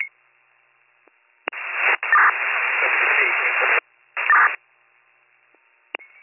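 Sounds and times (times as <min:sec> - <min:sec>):
radio static between dispatch transmissions: 0:01.5 - 0:04.6.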